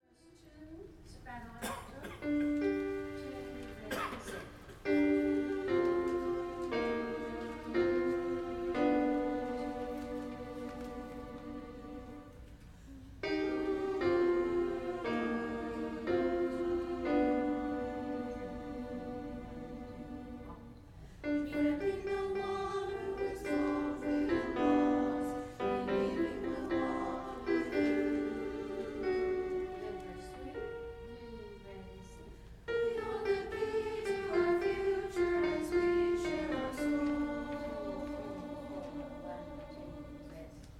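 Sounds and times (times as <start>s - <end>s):
soprano singing: 2.2s - 40.7s.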